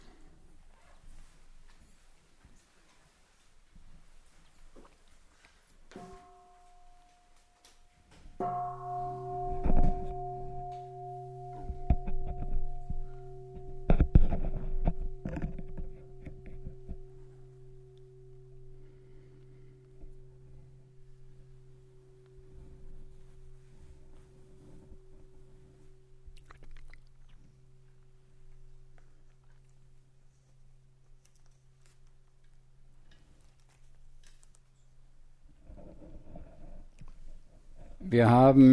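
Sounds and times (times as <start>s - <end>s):
metallic strikes clanging: 5.9s - 29.2s
bell ringing with long humming resonance: 6.0s - 26.2s
speech: 38.1s - 38.7s.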